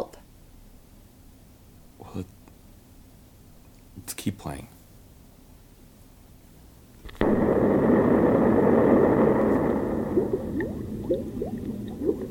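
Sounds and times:
speech: 0:02.1 - 0:02.4, 0:04.0 - 0:04.8
bubbles gurgling up through water: 0:07.2 - 0:12.2.

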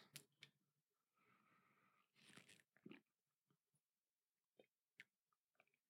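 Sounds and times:
person gulping water: 0:02.2 - 0:03.1.

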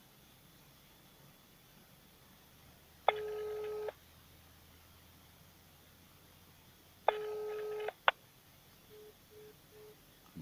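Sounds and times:
long electronic telephone line tones: 0:03.1 - 0:04.0, 0:07.1 - 0:08.0, 0:08.9 - 0:10.1.

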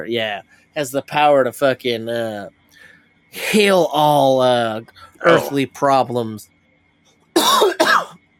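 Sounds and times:
speech: 0:00.0 - 0:06.5, 0:07.4 - 0:08.2
loud coughs: 0:07.4 - 0:08.2.

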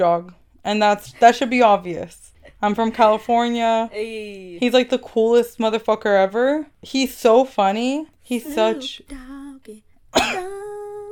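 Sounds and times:
speech: 0:00.0 - 0:10.4
voiced sounds: 0:08.3 - 0:11.1
sustained vocal tone: 0:08.5 - 0:11.1
person coughing: 0:10.2 - 0:10.6.

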